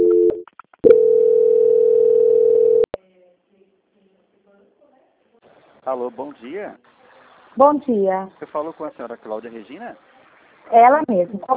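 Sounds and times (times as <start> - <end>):
telephone line tone during call transfer: 0.0 - 2.9
speech: 5.9 - 7.0, 7.6 - 11.5.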